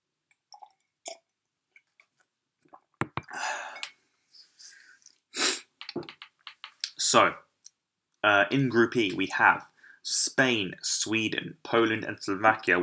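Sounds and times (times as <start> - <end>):
person sneezing: 5.4 - 5.7
speech: 7.1 - 7.4, 8.2 - 12.8.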